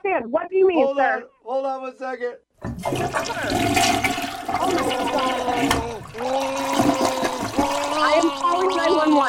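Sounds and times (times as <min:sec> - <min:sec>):
speech: 0:00.2 - 0:06.7, 0:08.2 - 0:09.2
toilet flushing: 0:02.6 - 0:09.2.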